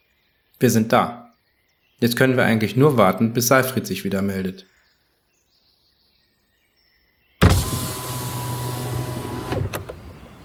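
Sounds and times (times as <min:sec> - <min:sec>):
speech: 0:00.6 - 0:01.2, 0:02.0 - 0:04.7
car window motor whirring as the glass lowers: 0:07.4 - 0:10.4.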